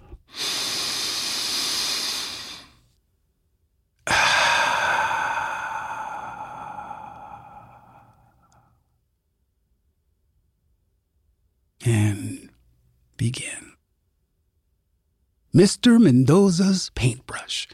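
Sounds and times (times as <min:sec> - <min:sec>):
slow deep breath: 0:00.0 - 0:02.8, 0:04.0 - 0:08.9
speech: 0:13.2 - 0:13.6, 0:15.6 - 0:17.7.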